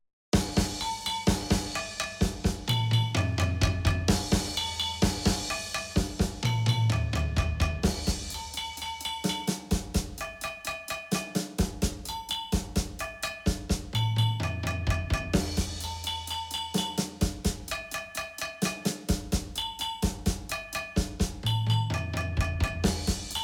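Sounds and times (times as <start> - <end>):
percussion mix: 0.3 - 23.4.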